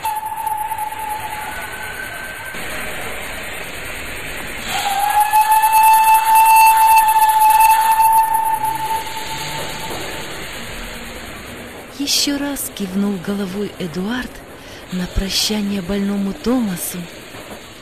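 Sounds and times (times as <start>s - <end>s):
long thin steam locomotive whistle: 0.0s - 3.7s, 4.6s - 11.6s
steam locomotive letting off steam: 0.0s - 17.7s
steam train pulling away: 0.0s - 17.7s
speech: 12.6s - 17.2s.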